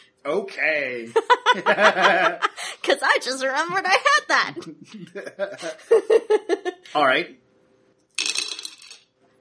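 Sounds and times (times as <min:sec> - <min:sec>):
speech: 0:00.2 - 0:07.4
laughter: 0:01.0 - 0:02.8, 0:03.9 - 0:06.9
six dice clattering onto a hard table: 0:08.1 - 0:09.1.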